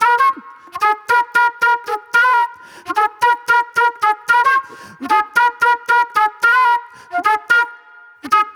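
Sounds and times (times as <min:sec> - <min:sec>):
raw funk flute: 0:00.0 - 0:08.5.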